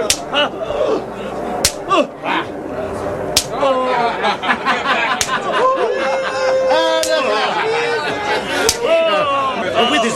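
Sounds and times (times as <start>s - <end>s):
whip of many thorns lashing a prisoner: 0.0s - 0.3s, 1.6s - 2.0s, 3.4s - 3.6s, 8.6s - 8.9s
laughter: 0.0s - 2.6s, 3.5s - 10.1s
voices groaning, crying out and murmuring: 0.0s - 4.3s, 5.4s - 10.1s.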